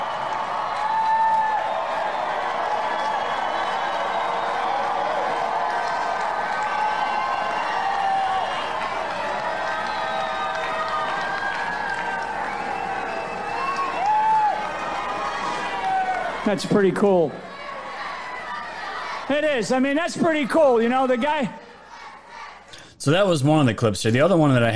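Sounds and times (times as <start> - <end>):
scattered whistles: 0.0 - 5.0, 6.6 - 14.4
large outdoor crowd cheering and shouting at helicopter flyovers: 0.0 - 22.7
speech: 16.5 - 17.4, 19.3 - 21.6, 23.0 - 24.7.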